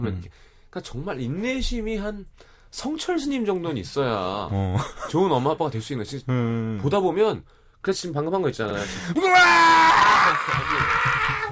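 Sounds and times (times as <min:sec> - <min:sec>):
speech: 0:00.0 - 0:11.0
person screaming in frustration imitating an exasperated parent: 0:09.2 - 0:11.4
laughter: 0:10.1 - 0:11.4.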